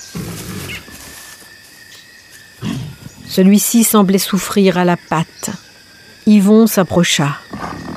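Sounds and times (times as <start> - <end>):
tiger growling: 0.0 - 1.2, 2.6 - 3.5, 7.4 - 7.9
speech: 3.3 - 5.6, 6.3 - 7.6.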